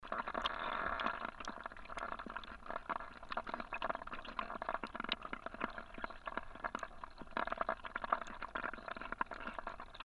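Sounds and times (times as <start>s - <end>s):
water: 0.0s - 10.0s.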